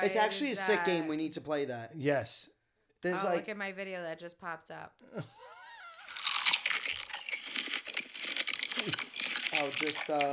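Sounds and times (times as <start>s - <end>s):
speech: 0.0s - 5.4s, 8.8s - 10.3s
biting and chewing of big juicy organic strawberries: 5.9s - 10.3s.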